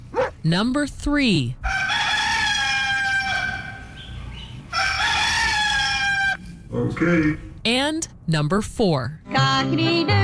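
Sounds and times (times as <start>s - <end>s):
speech: 0.4s - 1.6s, 6.7s - 10.2s
rooster crowing: 1.7s - 6.5s.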